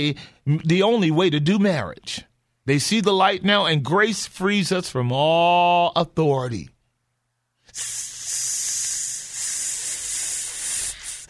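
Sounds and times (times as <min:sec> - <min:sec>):
speech: 0:00.0 - 0:06.7, 0:07.8 - 0:08.0
steady hiss: 0:07.7 - 0:11.2.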